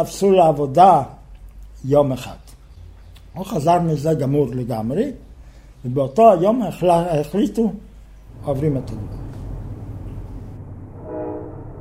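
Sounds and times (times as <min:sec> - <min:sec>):
speech: 0:00.0 - 0:01.2, 0:01.8 - 0:02.4, 0:03.4 - 0:05.2, 0:05.8 - 0:09.3
train rumbling at a railway station: 0:08.0 - 0:11.7
short tonal train horn: 0:10.9 - 0:11.7.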